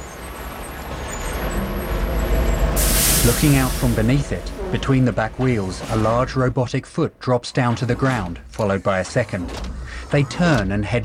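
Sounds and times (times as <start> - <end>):
large truck driving along and coming to a stop: 0.0 - 7.2, 9.4 - 11.0
hiss above a truck engine: 2.8 - 4.2
speech: 3.2 - 11.0.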